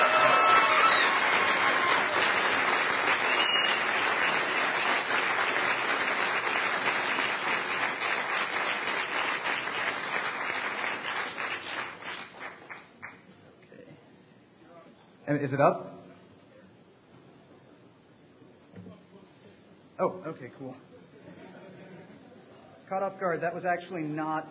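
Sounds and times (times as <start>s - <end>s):
crowd applauding after a presentation: 0.0s - 13.3s
speech: 15.4s - 15.9s, 20.3s - 20.9s, 22.9s - 24.4s.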